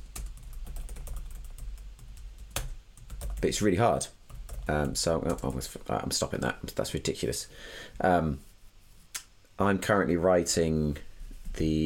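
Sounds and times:
fingers typing on a computer keyboard: 0.0 - 3.6, 4.3 - 5.6
speech: 3.4 - 8.5, 9.6 - 11.8.

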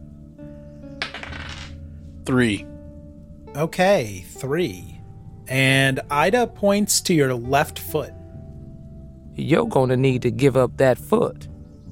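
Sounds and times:
six-sided die rattling across a hard table: 1.0 - 1.8
low musical hum: 1.8 - 11.8
speech: 2.3 - 2.7, 3.6 - 4.9, 5.5 - 8.2, 9.4 - 11.5.

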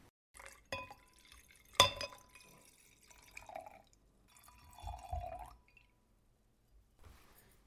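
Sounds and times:
soft sloshing and sipping of wine: 0.4 - 5.9
wine glasses clinking in a toast with Chinese wine: 1.7 - 2.5.

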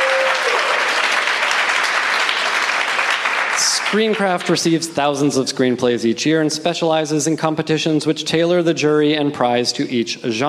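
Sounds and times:
audience round of applause: 0.0 - 4.5
speech: 3.9 - 10.4.

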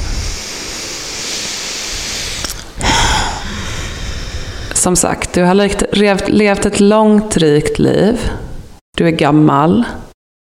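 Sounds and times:
deep breath during a guided relaxation exercise: 0.0 - 4.8
speech: 4.8 - 8.4, 9.0 - 10.0.

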